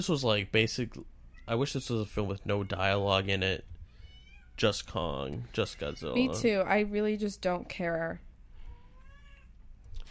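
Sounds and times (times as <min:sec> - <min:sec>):
speech: 0:00.0 - 0:03.7, 0:04.6 - 0:08.3
low hum: 0:00.0 - 0:10.0
cat meowing indoors: 0:03.8 - 0:04.6, 0:05.6 - 0:06.4, 0:08.6 - 0:09.6.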